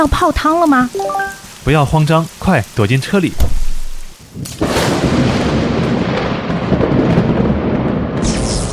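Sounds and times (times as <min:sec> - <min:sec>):
speech: 0:00.0 - 0:03.6, 0:04.4 - 0:05.4
thunder rumbling in a storm: 0:03.4 - 0:08.7.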